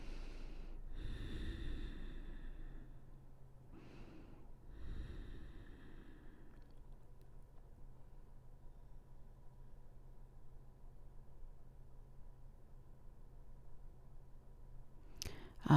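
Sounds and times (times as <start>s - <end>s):
deep slow breathing during a yoga stretch: 0.0s - 7.0s.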